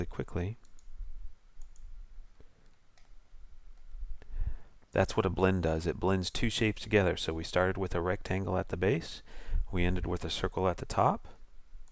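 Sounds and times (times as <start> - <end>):
speech: 0.0 - 0.6, 4.9 - 11.4
low hiss: 0.0 - 11.8
mouse clicks on a software checkbox: 0.6 - 0.9, 1.6 - 4.0.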